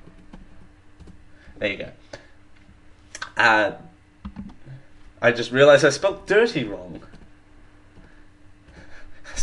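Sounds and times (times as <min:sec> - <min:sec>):
speech: 0:01.6 - 0:02.2, 0:03.4 - 0:03.9, 0:05.2 - 0:07.1
keystrokes on a computer keyboard: 0:04.2 - 0:04.6.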